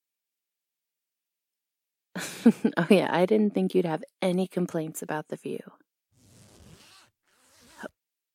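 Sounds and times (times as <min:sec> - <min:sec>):
speech: 0:02.4 - 0:05.8
dress zipper pulled and sticking: 0:06.1 - 0:08.0.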